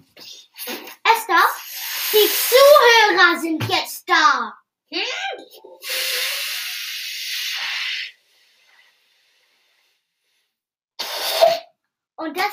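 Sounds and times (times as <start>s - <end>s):
air hissing from a toy balloon: 0.6s - 3.2s, 5.8s - 11.7s.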